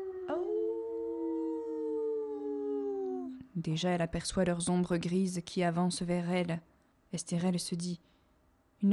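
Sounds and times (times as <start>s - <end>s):
wolves howling: 0.0s - 3.4s
speech: 3.6s - 8.1s.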